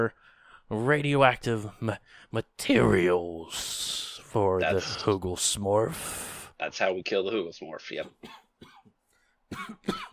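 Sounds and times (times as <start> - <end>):
speech: 0.0 - 8.7, 9.5 - 10.1
person imitating coughing with their voice: 9.5 - 10.1.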